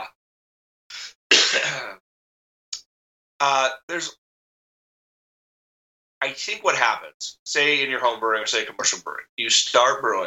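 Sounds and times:
dry cough: 1.0s - 2.0s
person clearing throat: 1.3s - 2.0s
speech: 3.4s - 4.2s, 6.2s - 10.2s.

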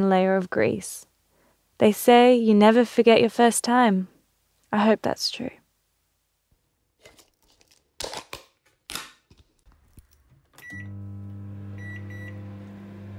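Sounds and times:
speech: 0.0s - 1.1s, 1.8s - 4.1s, 4.7s - 5.6s
sharp clatters and crinkling handling noises: 7.0s - 10.6s
microwave oven beep: 10.6s - 13.1s.

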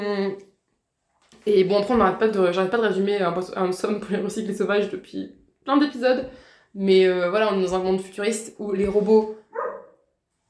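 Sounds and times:
speech: 1.4s - 9.4s
single dog bark, a short full-bodied woof: 9.5s - 10.0s.

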